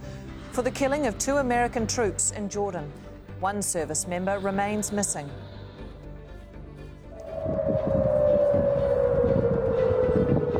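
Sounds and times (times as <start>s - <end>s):
dense rumble of noise: 0.0s - 10.5s
speech: 0.6s - 5.5s
air raid siren wailing: 7.1s - 10.5s.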